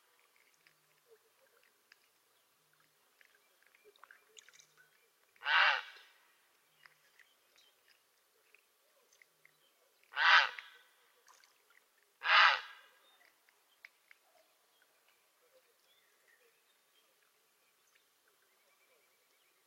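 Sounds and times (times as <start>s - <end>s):
soft scattered ticks and chirps: 0.0s - 12.2s, 12.9s - 19.6s
Grey heron croaking rough and grating: 5.4s - 6.0s, 10.1s - 10.8s, 12.2s - 12.9s.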